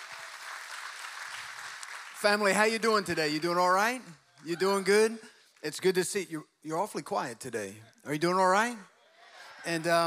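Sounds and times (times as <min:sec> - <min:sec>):
audience applause in a large room: 0:00.0 - 0:02.6
speech: 0:02.2 - 0:08.9, 0:09.6 - 0:10.0.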